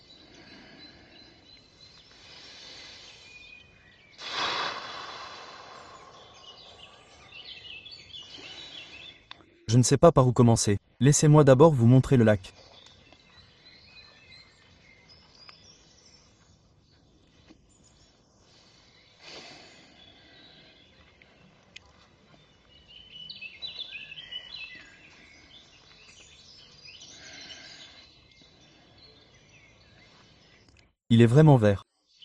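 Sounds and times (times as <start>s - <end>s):
birds chirping and twittering outdoors by a lake after rain: 0.0s - 32.2s
speech: 9.7s - 12.7s, 31.2s - 31.8s.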